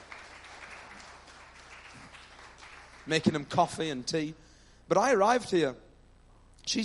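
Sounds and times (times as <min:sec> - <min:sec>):
crowd applauding: 0:00.0 - 0:03.9
speech: 0:03.1 - 0:05.8, 0:06.7 - 0:06.8.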